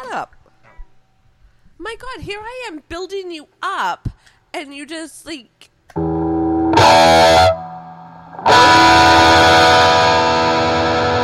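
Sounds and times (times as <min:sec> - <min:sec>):
speech: 0:00.0 - 0:00.4, 0:01.8 - 0:06.1
electric guitar playing through heavy distortion and reverb: 0:05.9 - 0:11.2.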